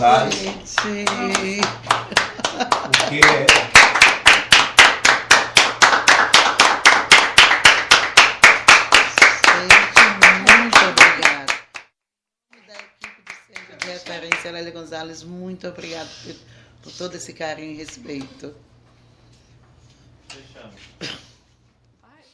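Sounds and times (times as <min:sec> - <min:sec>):
speech: 0:00.0 - 0:03.7, 0:14.4 - 0:18.7
people standing and clapping rhythmically in unison: 0:00.3 - 0:14.6.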